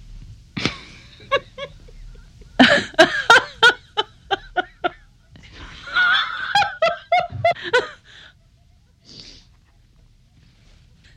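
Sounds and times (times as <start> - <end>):
woman laughing shortly: 0.6 - 9.1.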